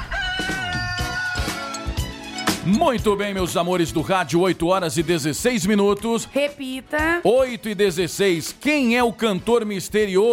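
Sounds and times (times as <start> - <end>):
rooster crowing: 0.0 - 2.1
speech: 2.6 - 10.3.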